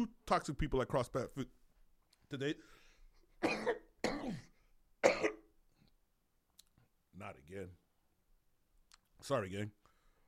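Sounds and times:
speech: 0:00.0 - 0:01.6, 0:02.3 - 0:02.8, 0:07.2 - 0:07.8, 0:09.2 - 0:09.8
harsh raspy coughs: 0:03.4 - 0:05.6.

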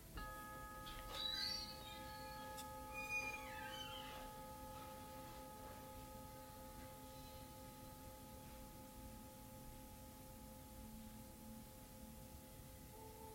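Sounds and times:
meditation bell ringing: 0:00.2 - 0:13.3
faint chirps: 0:00.8 - 0:06.0, 0:06.8 - 0:08.6.

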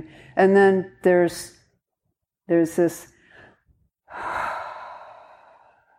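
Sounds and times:
speech: 0:00.0 - 0:01.6, 0:02.5 - 0:03.1, 0:04.1 - 0:04.5
faint breath: 0:03.2 - 0:05.9
deep exhale: 0:03.3 - 0:05.9.

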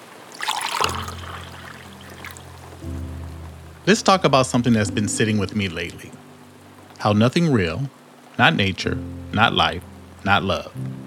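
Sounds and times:
coffee pouring into a cup: 0:00.3 - 0:03.1
speech: 0:03.9 - 0:06.2, 0:07.0 - 0:11.0.

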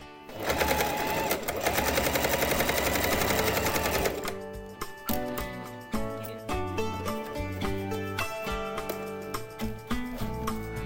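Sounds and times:
sewing machine running: 0:00.3 - 0:04.4
music with a steady beat: 0:02.3 - 0:10.8.

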